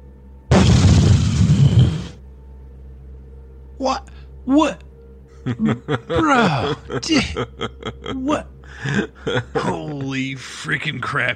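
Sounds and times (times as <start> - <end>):
explosion with roaring rumbling blast and heavy low-end boom: 0.5 - 2.2
speech: 3.8 - 4.8, 5.4 - 11.3
laughter: 5.3 - 10.3.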